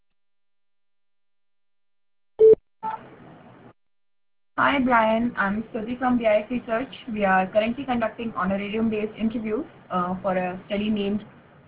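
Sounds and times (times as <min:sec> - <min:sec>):
voicemail answering machine beep on a business phone line: 0:02.4 - 0:03.0
speech: 0:04.6 - 0:11.4.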